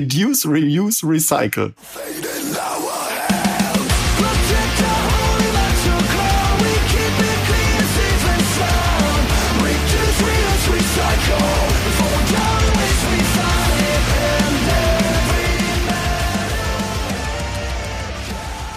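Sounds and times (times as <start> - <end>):
speech: 0.0 - 2.4
person shouting vocals in a metal song: 1.8 - 5.2
heavy distorted guitars in a self-made metal song: 1.8 - 18.7
pounding drums in a self-made metal song: 2.3 - 18.7.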